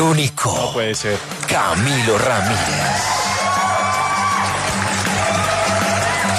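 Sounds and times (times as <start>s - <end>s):
speech: 0.2s - 3.2s
crowd cheering and shouting: 1.4s - 6.3s.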